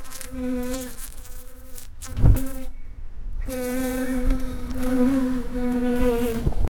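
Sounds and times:
bumblebee buzz with steady low droning hum: 0.0s - 2.8s, 3.4s - 6.6s
soft thump: 2.1s - 2.5s.

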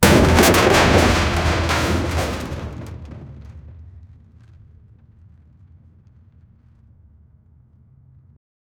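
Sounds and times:
massive boulder crashing: 0.0s - 6.5s.

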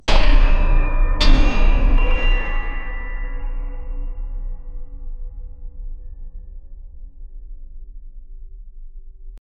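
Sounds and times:
distinct metallic clanks of colliding objects: 0.0s - 4.8s.

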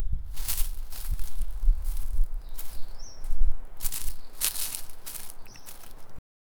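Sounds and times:
tiny footsteps crunching: 0.0s - 6.2s.

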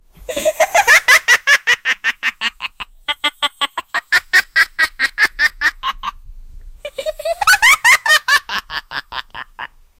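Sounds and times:
monkey laughing: 0.3s - 6.2s, 6.9s - 9.7s.

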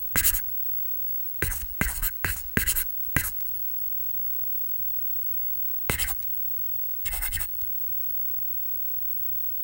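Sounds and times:
pen writing slowly: 0.2s - 0.4s, 1.4s - 3.4s, 5.9s - 6.2s, 7.1s - 7.6s.

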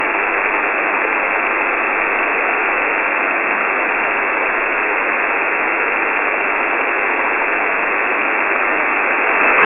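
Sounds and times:
shortwave radio static: 0.0s - 9.6s.

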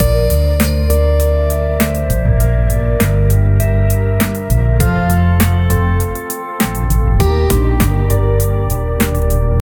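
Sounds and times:
chill music: 0.0s - 9.6s.

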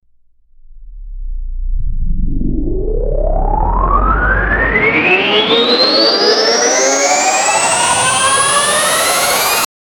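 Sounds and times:
techno disco powerup: 1.9s - 9.7s.

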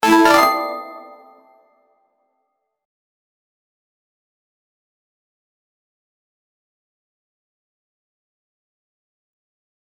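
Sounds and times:
platformer game sound effect: 0.0s - 1.5s.

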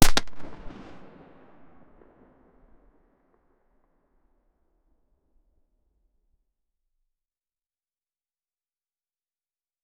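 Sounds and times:
cannon shot in frost: 0.0s - 2.7s.

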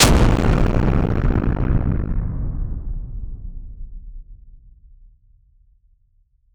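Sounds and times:
giant monster hitting: 0.0s - 3.2s.

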